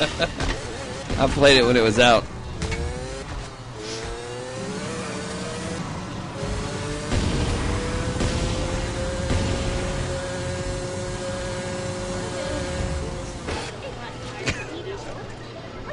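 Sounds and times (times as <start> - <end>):
speech: 0.0 - 0.5, 1.1 - 2.4
laughter: 0.0 - 0.7, 14.3 - 15.2
car engine revving in a driving video game: 0.0 - 14.5
road and tire noise in a driving video game: 0.0 - 15.9.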